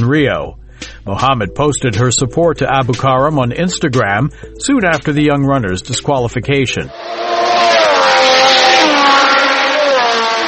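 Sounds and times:
speech: 0.0s - 8.2s
Formula One race car engine revving: 6.9s - 10.4s.

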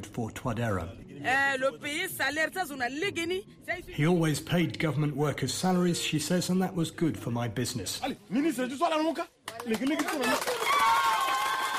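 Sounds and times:
speech: 0.0s - 11.1s
villagers applauding and cheering at an election campaign speech: 9.5s - 11.7s.

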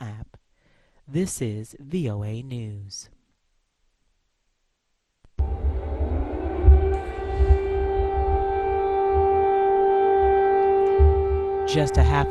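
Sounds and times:
speech: 1.1s - 3.2s, 11.7s - 12.3s
air raid sirens wailing across Kyiv Ukraine: 5.4s - 12.3s
low rumbling background: 5.4s - 12.3s.

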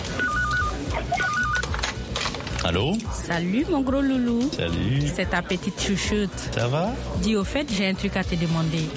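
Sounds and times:
mobile phone ringing with warbling trill tones: 0.1s - 1.8s
speech: 2.6s - 8.9s.

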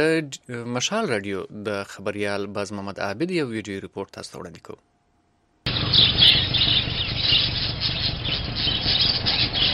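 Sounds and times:
speech: 0.0s - 4.9s
many birds squawking and chirping at a bird market in Jalalabad: 5.7s - 9.7s.

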